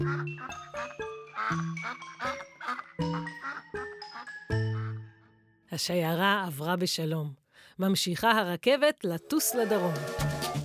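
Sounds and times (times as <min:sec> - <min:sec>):
ducks quacking while crossing railway tracks: 0:00.0 - 0:05.0
speech: 0:00.1 - 0:02.4, 0:05.8 - 0:10.6.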